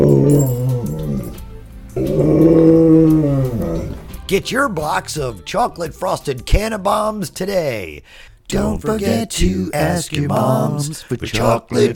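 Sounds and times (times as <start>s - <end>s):
dog growling: 0.0s - 4.2s
speech: 0.3s - 0.6s, 4.3s - 11.9s.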